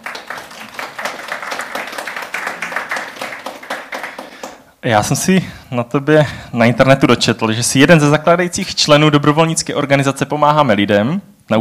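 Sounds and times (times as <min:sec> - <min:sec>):
small crowd applauding: 0:00.0 - 0:04.7
speech: 0:04.8 - 0:11.5.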